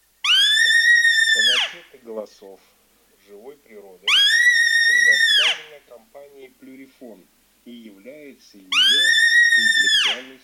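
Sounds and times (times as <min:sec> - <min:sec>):
male roe deer: 0:00.2 - 0:01.8, 0:04.1 - 0:05.8, 0:08.7 - 0:10.4.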